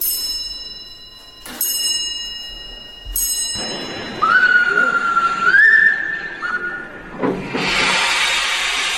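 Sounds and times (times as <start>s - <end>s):
sharp ringing metallic strikes: 0.0s - 8.3s
steam locomotive whistle from the engine that pulled the first Iberian Peninsula train: 4.0s - 8.9s
loud rushing hiss: 7.0s - 8.9s.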